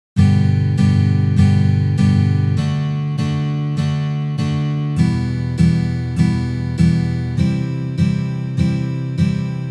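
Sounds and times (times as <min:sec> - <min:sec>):
guitar playing G major chord exercises: 0:00.2 - 0:09.7.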